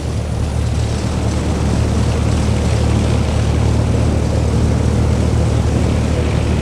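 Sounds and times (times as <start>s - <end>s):
military aircraft propeller engine at military power during pre-takeoff check: 0.0s - 6.6s.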